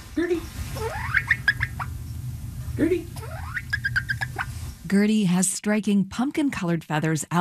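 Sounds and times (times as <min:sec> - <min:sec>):
bantam hen with pumpkin-colored feathers peeping in a living room: 0:00.0 - 0:02.3, 0:03.1 - 0:04.8
low hum: 0:00.0 - 0:07.3
speech: 0:00.2 - 0:01.1, 0:02.8 - 0:03.5, 0:04.9 - 0:07.3.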